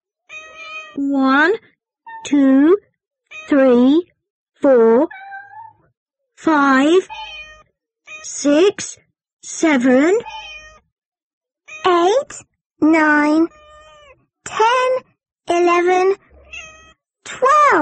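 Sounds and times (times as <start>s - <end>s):
cats meowing: 0.3s - 1.0s, 3.3s - 3.6s, 5.1s - 5.8s, 7.0s - 8.3s, 10.2s - 10.8s, 11.7s - 11.9s, 13.5s - 14.1s, 16.2s - 17.0s
speech: 1.0s - 2.8s, 3.5s - 5.2s, 6.4s - 7.2s, 8.2s - 10.4s, 11.8s - 13.6s, 14.5s - 16.2s, 17.3s - 17.7s.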